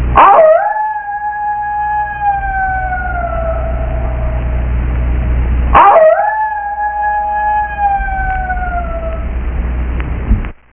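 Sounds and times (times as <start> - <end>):
steady low hum: 0.0 - 10.7
coyote howling: 0.2 - 4.6, 5.8 - 9.4.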